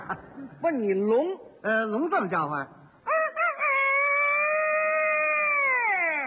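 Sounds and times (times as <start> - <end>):
speech: 0.1 - 2.8
man's voice imitating a chicken clucking and crowing: 3.0 - 6.2.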